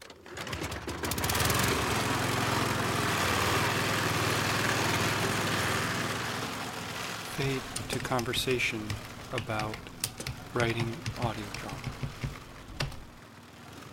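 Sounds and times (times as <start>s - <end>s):
lawnmower engine starting and running: 0.0s - 13.9s
speech: 7.4s - 9.9s, 10.5s - 12.0s.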